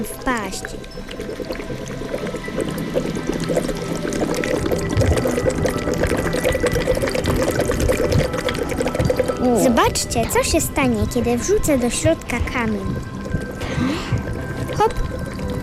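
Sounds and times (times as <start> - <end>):
speech: 0.0 - 3.6, 9.6 - 13.1
hot mud pool heated by volcanic lava bubbling and gurgling: 0.0 - 15.6.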